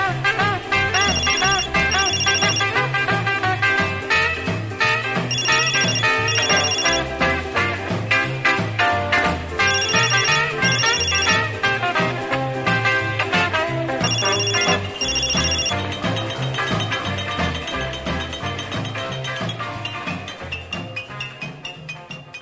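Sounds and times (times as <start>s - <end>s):
dense continuous musical backdrop: 0.0s - 22.4s
cell phone ringing: 0.9s - 2.9s, 5.2s - 7.3s, 9.6s - 11.6s, 14.0s - 20.5s.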